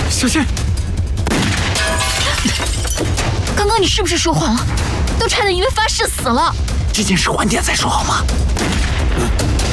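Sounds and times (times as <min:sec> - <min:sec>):
speech: 0:00.2 - 0:00.8, 0:02.4 - 0:09.6
gunshots: 0:01.2 - 0:01.8, 0:08.5 - 0:09.2.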